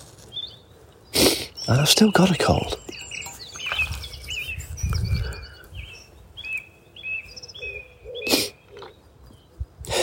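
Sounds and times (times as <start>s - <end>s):
bird chattering with high repeated chirps and whistles: 1.5s - 9.0s
speech: 1.7s - 2.9s.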